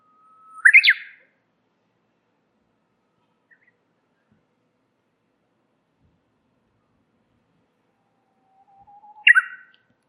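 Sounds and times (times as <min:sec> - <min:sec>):
warbler song: 0:00.0 - 0:01.3, 0:03.0 - 0:04.5, 0:06.7 - 0:10.0.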